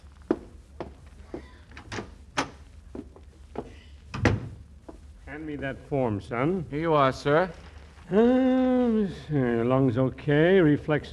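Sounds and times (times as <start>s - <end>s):
door opening and shutting: 4.1s - 4.6s
speech: 5.3s - 11.1s.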